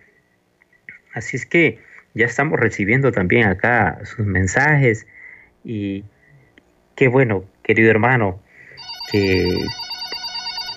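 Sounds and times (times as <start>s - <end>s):
speech: 1.2s - 6.2s, 7.0s - 8.4s, 9.1s - 9.8s
electronic telephone ring of incoming call to a radio station: 8.7s - 10.7s.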